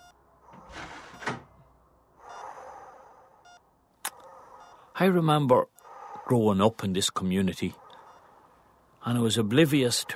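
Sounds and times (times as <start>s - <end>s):
door swishing as it is pulled shut: 0.5s - 1.6s
speech: 5.0s - 5.7s, 6.3s - 7.8s, 9.0s - 10.1s.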